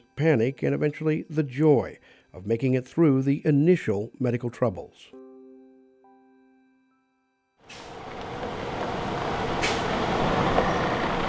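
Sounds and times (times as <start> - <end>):
speech: 0.2 - 5.2
2016 Freightliner Cascadia semi truck engine pulling into a gravel driveway: 7.7 - 11.2.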